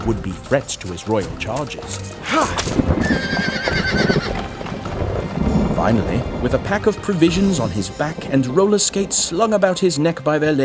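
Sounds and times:
speech: 0:00.0 - 0:04.1, 0:05.8 - 0:10.6
clip-clop of horse hooves: 0:00.0 - 0:10.6
horse whinnying: 0:02.1 - 0:04.6.

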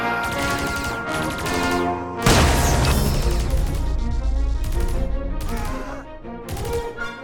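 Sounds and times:
rapid gunfire during a firefight: 0:00.1 - 0:07.2
crashing noise during a firefight: 0:02.2 - 0:07.0.

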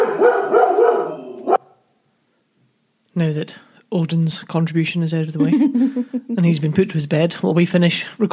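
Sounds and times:
dog barking loudly: 0:00.0 - 0:01.8
speech: 0:03.2 - 0:08.3
laughter: 0:05.4 - 0:07.0.

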